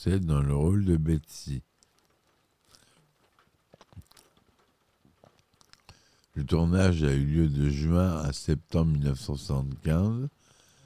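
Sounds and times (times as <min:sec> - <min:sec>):
speech: 0:00.0 - 0:01.7, 0:06.4 - 0:10.4
rain falling steadily with soft taps and patters: 0:01.4 - 0:07.4.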